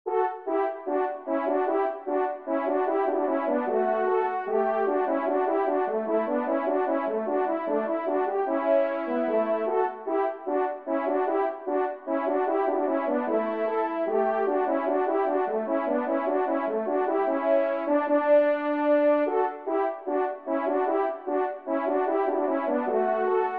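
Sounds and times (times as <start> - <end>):
rondo in C major: 0.1 - 23.5.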